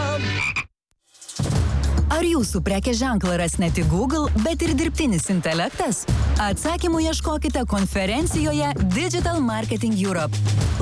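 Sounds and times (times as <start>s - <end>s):
frog croaking: 0.2s - 0.7s
speech: 2.2s - 10.7s.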